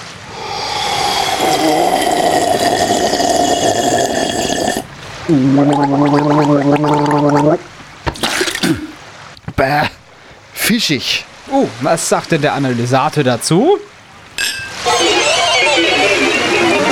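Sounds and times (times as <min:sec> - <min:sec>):
person gargling a big sip of water from a water glass: 0:00.3 - 0:09.0
person spluttering: 0:00.4 - 0:09.0
speech: 0:05.3 - 0:07.8, 0:09.6 - 0:09.9, 0:10.7 - 0:13.9
laughter: 0:14.8 - 0:16.9.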